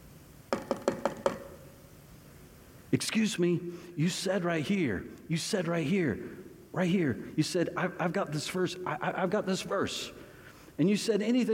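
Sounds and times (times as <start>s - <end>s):
knocking on a door: 0.5s - 1.6s
speech: 2.9s - 10.2s, 10.8s - 11.5s.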